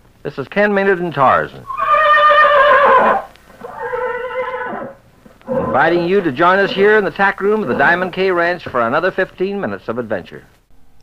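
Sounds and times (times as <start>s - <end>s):
speech: 0.2s - 1.8s, 5.8s - 10.6s
horse whinnying: 1.6s - 8.3s.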